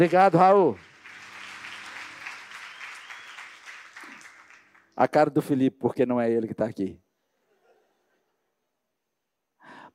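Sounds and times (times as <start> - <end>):
speech: 0.0 - 0.9, 5.0 - 7.0
audience applause: 0.0 - 5.0.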